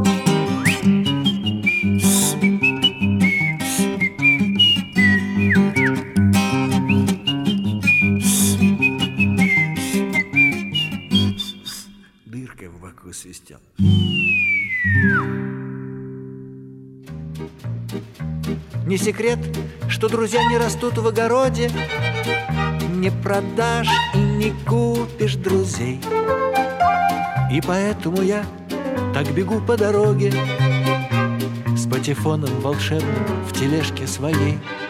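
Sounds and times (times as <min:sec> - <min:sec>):
steady instrumental backing music: 0:00.0 - 0:11.5, 0:13.8 - 0:34.8
bright whistled melody: 0:00.0 - 0:12.1, 0:13.8 - 0:15.5, 0:23.8 - 0:24.6, 0:26.0 - 0:28.2
speech: 0:19.1 - 0:22.4, 0:23.0 - 0:26.4, 0:27.5 - 0:28.6, 0:29.2 - 0:30.6, 0:32.0 - 0:34.8.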